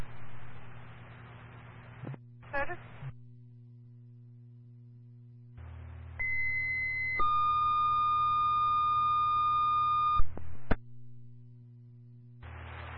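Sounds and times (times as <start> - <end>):
radio static hiss: 0.0 - 3.1, 12.4 - 12.9
radio dispatch paging tones for an EMS crew: 6.2 - 10.7.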